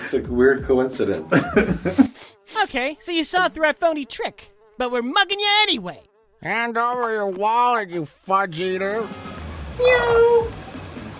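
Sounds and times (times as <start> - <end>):
speech: 0.1 - 10.2
laughter: 1.2 - 2.3
person imitating a cat meow: 9.8 - 10.5.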